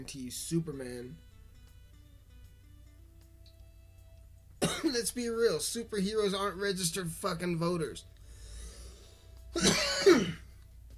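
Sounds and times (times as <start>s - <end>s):
speech: 0.0s - 1.3s, 4.8s - 8.1s, 9.5s - 10.4s
person coughing into the microphone: 4.6s - 5.0s, 9.6s - 10.5s.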